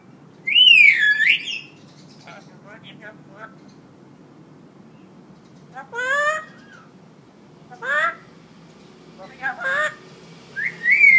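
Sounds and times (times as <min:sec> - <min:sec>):
hill myna giving loud rich rising calls: 0:00.0 - 0:04.0, 0:04.8 - 0:11.1
steady low background noise: 0:00.0 - 0:11.1.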